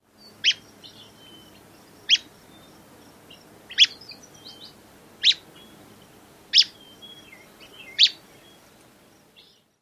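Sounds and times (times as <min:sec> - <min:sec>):
Willow Flycatcher call variant: 0:03.7 - 0:05.5, 0:06.5 - 0:08.2.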